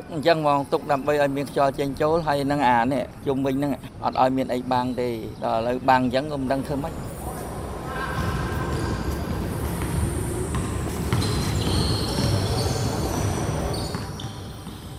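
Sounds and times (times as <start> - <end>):
speech: 0.1 - 7.1
basketball bouncing inside the main building of an Olympic stadium: 8.2 - 14.9.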